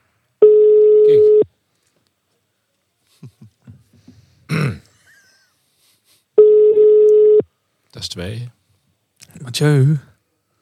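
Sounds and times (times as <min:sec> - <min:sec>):
telephone ringing tone of an outgoing call: 0:00.4 - 0:01.4, 0:06.4 - 0:07.4
speech: 0:08.2 - 0:08.6, 0:09.5 - 0:10.1.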